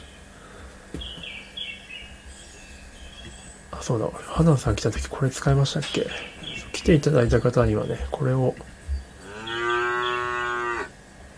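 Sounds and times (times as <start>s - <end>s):
speech: 3.8s - 8.7s
single long cow moo with a steady resonant tone: 9.2s - 11.0s.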